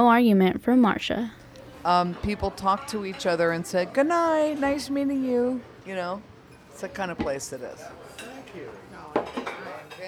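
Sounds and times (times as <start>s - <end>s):
speech: 0.0s - 9.4s
murmur of chatter in a supper club dining room: 0.7s - 10.0s
dishes and cutlery clinking in a supper club dining room in Golden Hill: 6.5s - 10.0s.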